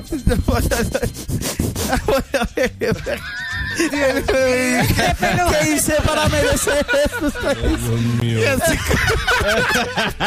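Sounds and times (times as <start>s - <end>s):
speech: 0.0s - 10.2s
person imitating a dog sniffing: 1.0s - 2.0s
laughter: 1.8s - 10.2s.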